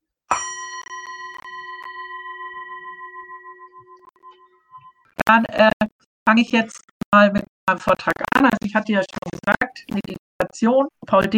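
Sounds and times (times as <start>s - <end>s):
meditation gong being struck: 0.3s - 5.0s
speech: 5.2s - 5.7s, 6.3s - 11.3s.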